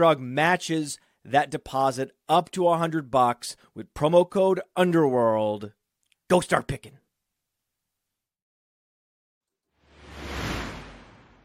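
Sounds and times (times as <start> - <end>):
speech: 0.0 - 7.0
airy whoosh transition sound effect: 9.8 - 11.4.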